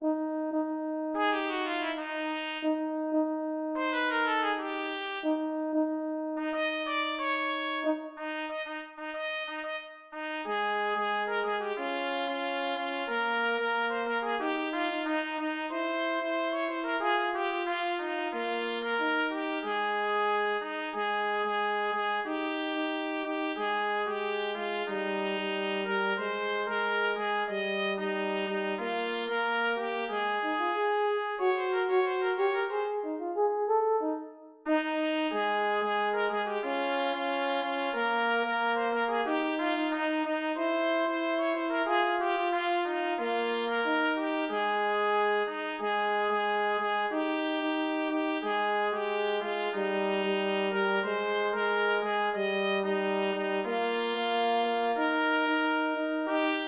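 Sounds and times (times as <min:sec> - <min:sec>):
jazzy Christmas carol on trumpet: 0:00.0 - 0:56.6.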